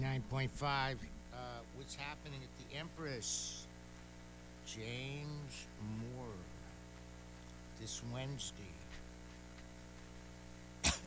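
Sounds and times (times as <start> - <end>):
faint steady hum: 0.0 - 11.0
speech: 0.1 - 3.7, 4.7 - 6.6, 7.8 - 8.8
cough: 10.8 - 11.0.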